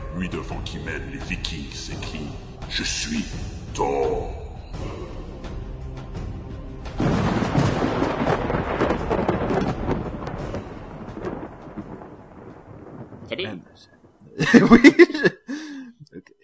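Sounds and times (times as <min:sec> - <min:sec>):
speech: 0:00.2 - 0:05.3, 0:14.5 - 0:15.0
rumbling storm sound effect: 0:06.8 - 0:14.3
crash of thunder sound effect: 0:06.9 - 0:13.5
laughter: 0:14.3 - 0:16.2.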